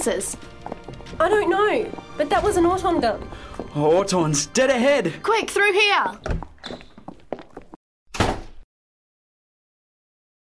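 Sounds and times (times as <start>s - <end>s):
speech: 0.0s - 6.8s
door pushed shut with a heavy thunk: 8.1s - 8.6s.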